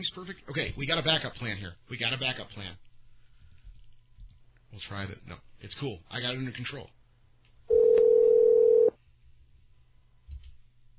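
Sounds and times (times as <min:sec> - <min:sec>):
speech: 0:00.0 - 0:02.9, 0:04.7 - 0:07.0
dial tone after a Skype call disconnects: 0:07.7 - 0:08.9.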